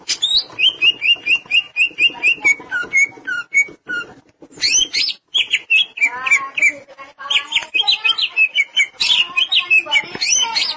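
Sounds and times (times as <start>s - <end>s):
Greater green leafbird song: 0.0s - 10.7s.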